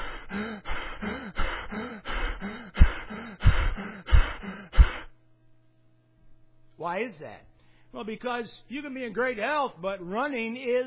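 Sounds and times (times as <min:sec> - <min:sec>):
person panting heavily after running a mile at full pace: 0:00.0 - 0:05.2
speech: 0:06.9 - 0:10.8.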